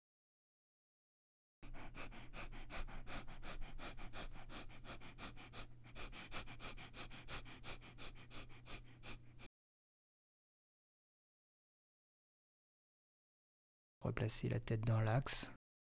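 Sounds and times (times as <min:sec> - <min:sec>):
rapid forceful abdominal breathing: 0:01.6 - 0:09.5
speech: 0:14.0 - 0:15.6.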